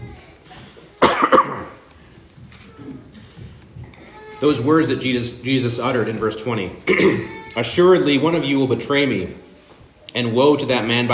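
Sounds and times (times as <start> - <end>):
person coughing: 1.0 - 1.8, 6.9 - 7.4
speech: 4.4 - 9.5, 10.1 - 11.1.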